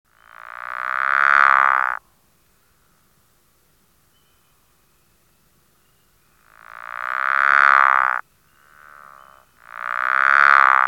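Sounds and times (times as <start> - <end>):
Pickerel frog pulsed snoring croak: 0.3 - 2.0, 6.5 - 10.8.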